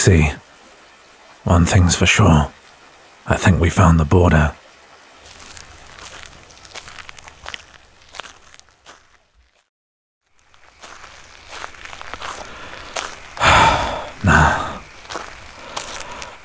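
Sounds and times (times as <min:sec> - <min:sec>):
speech: 0:00.0 - 0:00.4, 0:01.4 - 0:02.6, 0:03.2 - 0:04.6
footsteps of people walking along a border beside water: 0:05.3 - 0:09.7, 0:10.4 - 0:13.3, 0:14.0 - 0:16.3.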